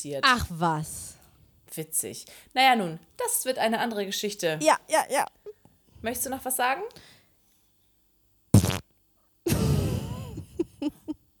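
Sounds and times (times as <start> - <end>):
speech: 0.0 - 1.1, 1.7 - 7.1
person imitating a fart with mouth: 4.6 - 5.4, 8.6 - 8.8, 9.5 - 10.4.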